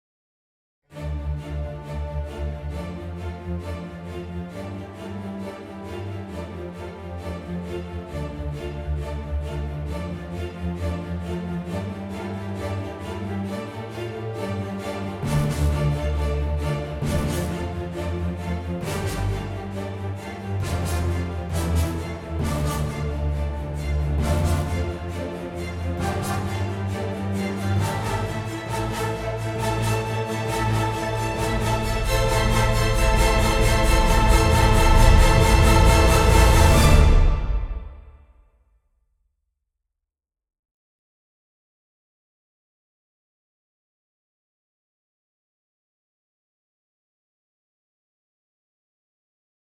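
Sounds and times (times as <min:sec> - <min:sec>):
orchestra: 0:00.9 - 0:38.3.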